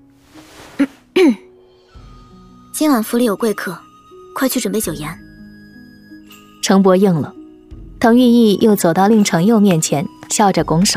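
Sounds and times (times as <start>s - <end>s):
person clearing throat: 0.8s - 1.5s
speech: 2.8s - 3.8s, 4.4s - 5.2s, 6.7s - 7.4s, 8.0s - 10.9s.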